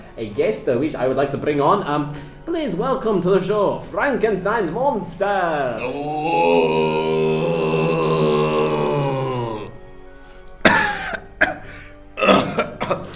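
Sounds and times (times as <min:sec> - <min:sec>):
speech: 0:00.2 - 0:07.4
person groaning: 0:05.8 - 0:09.8, 0:12.2 - 0:12.8
person clearing throat: 0:10.6 - 0:13.1
person coughing: 0:10.6 - 0:13.1.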